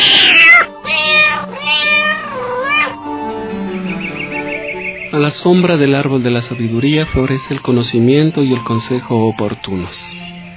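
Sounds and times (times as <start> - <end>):
female cat meowing: 0.0 - 3.0, 6.4 - 7.7
speech: 5.2 - 10.3.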